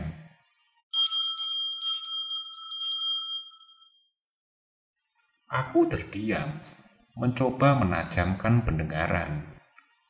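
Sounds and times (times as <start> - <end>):
small bells jingling: 0.9 - 4.2
speech: 5.5 - 9.5.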